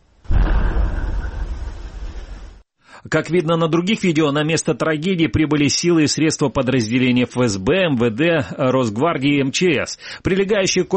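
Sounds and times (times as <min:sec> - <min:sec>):
explosion recorded by a car dashcam: 0:00.2 - 0:02.6
speech: 0:03.0 - 0:10.9.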